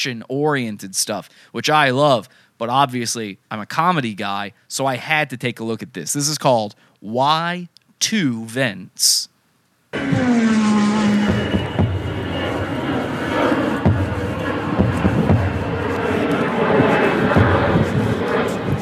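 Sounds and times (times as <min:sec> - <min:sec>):
speech: 0:00.0 - 0:09.3, 0:09.9 - 0:10.7
airplane engine roar: 0:10.0 - 0:18.8.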